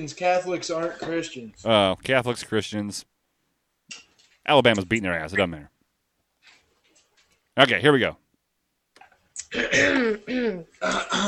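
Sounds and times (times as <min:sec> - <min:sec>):
speech: 0:00.0 - 0:03.1, 0:03.9 - 0:05.7, 0:07.6 - 0:08.2, 0:09.5 - 0:11.2
person clearing throat: 0:09.4 - 0:11.2.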